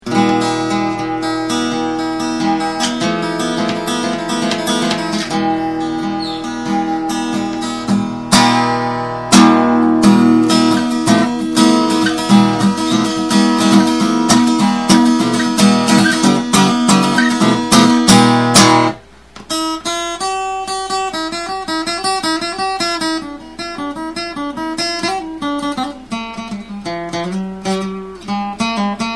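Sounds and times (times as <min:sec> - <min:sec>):
Spanish guitar riff: 0:00.0 - 0:29.1.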